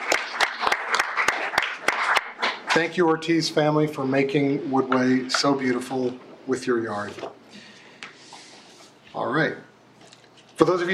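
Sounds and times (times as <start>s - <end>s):
audience applause at a community yard-of-the-month award presentation: 0.0s - 2.7s
speech: 2.8s - 7.3s, 9.2s - 9.6s, 10.6s - 10.9s.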